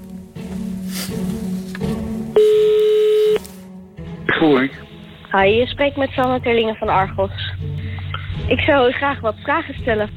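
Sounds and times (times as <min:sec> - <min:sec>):
steady bright telephone ringing tone: 0:02.4 - 0:03.4
speech: 0:04.3 - 0:07.7, 0:08.5 - 0:10.1.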